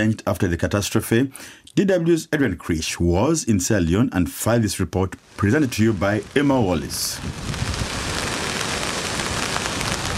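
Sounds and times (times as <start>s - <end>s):
speech: 0.0s - 7.8s
heavy rain falling in Regent, Freetown, Sierra Leone: 5.2s - 10.1s.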